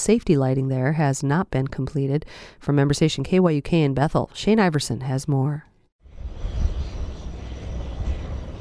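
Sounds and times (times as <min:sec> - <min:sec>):
speech: 0:00.0 - 0:05.7
cargo plane engine roaring during takeoff: 0:06.1 - 0:08.5.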